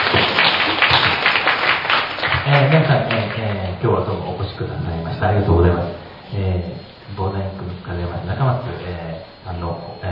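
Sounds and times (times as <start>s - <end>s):
audience applause at a book launch talk event: 0.0s - 3.6s
speech: 2.6s - 10.0s.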